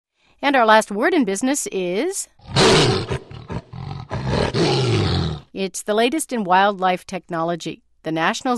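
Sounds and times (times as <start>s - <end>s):
speech: 0.4s - 3.2s, 5.6s - 8.5s
Sumatran tiger grunting: 2.4s - 5.5s.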